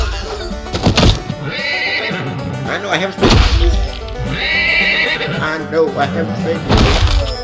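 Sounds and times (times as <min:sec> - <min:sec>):
horse whinnying loudly: 0:01.3 - 0:02.9, 0:04.1 - 0:06.6
speech: 0:02.7 - 0:03.8, 0:05.4 - 0:07.1.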